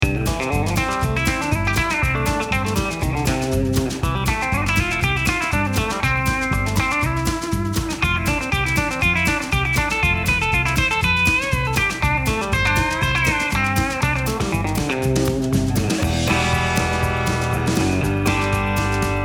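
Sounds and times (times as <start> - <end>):
band playing clean: 0.0 - 19.2.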